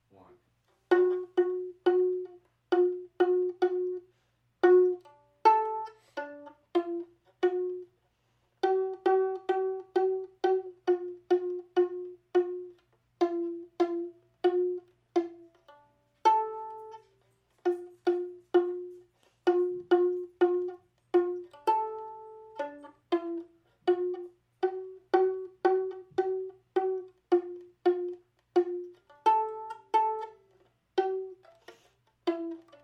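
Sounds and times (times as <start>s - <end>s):
violin playing a Christmas tune: 0.1s - 32.8s.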